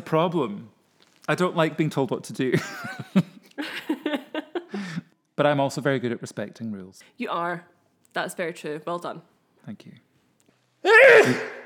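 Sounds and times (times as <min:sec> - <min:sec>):
speech: 0:00.0 - 0:00.7, 0:01.3 - 0:03.3, 0:05.4 - 0:10.1, 0:10.8 - 0:11.6
violent sneeze: 0:10.9 - 0:11.6.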